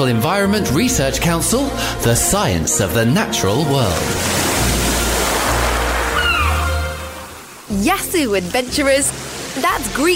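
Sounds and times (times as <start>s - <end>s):
speech: 0.0s - 4.6s, 7.7s - 10.1s
waves of the warm Aegean Sea around the Greek islands washing: 3.6s - 10.1s.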